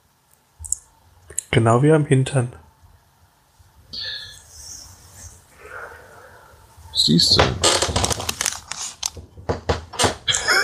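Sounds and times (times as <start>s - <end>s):
speech: 1.5s - 2.6s, 7.1s - 7.7s
bed creaking: 7.3s - 10.3s.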